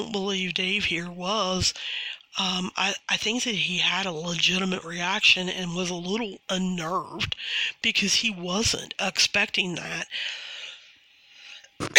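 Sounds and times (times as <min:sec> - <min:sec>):
speech: 0:00.0 - 0:10.5
soft breathy inhale: 0:01.8 - 0:02.2, 0:07.4 - 0:07.8, 0:10.1 - 0:11.8.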